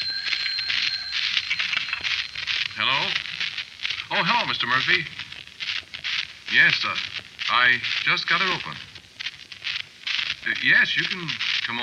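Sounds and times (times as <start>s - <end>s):
telephone ringing with a bright metallic bell trill: 0.0s - 4.4s
speech: 4.1s - 5.2s, 6.5s - 8.9s, 10.4s - 11.8s.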